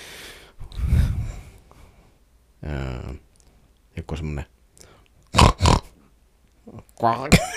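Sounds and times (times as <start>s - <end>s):
speech: 4.0s - 4.6s, 6.7s - 7.5s
person imitating a pig with snorting oinks and grunting squeal: 5.3s - 6.0s.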